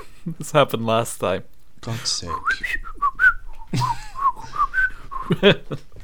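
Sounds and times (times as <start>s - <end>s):
speech: 0.2s - 2.9s, 3.7s - 4.0s, 5.3s - 5.9s
person whistling a bouncy pop melody: 2.4s - 5.3s
laughter: 3.7s - 6.0s.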